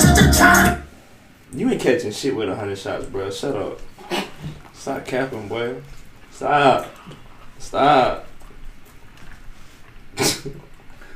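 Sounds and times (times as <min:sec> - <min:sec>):
quiet noise: 0:00.0 - 0:11.1
speech: 0:01.5 - 0:08.3, 0:10.2 - 0:10.6
sneeze: 0:04.0 - 0:04.4, 0:10.2 - 0:10.6.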